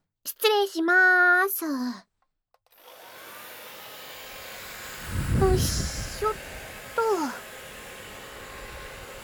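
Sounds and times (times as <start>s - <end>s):
speech: 0.2s - 2.1s, 5.5s - 6.5s
hair dryer drying someone's hair after a bath: 2.7s - 9.2s.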